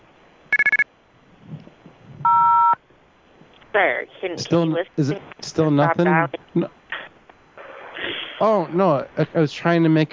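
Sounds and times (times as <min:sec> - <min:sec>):
touch-tone telephone keypad beeps: 0:00.5 - 0:00.8
speech: 0:03.7 - 0:06.8, 0:08.4 - 0:10.1.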